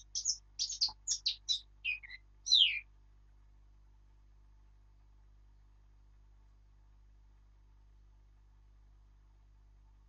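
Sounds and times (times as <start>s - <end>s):
Eurasian blackcap Sylvia atricapilla singing: 0.0s - 2.8s.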